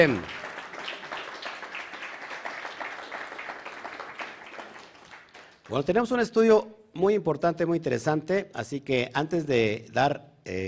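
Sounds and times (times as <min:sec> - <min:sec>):
speech: 0:00.0 - 0:00.4, 0:05.7 - 0:10.6
crowd applauding: 0:00.0 - 0:05.8.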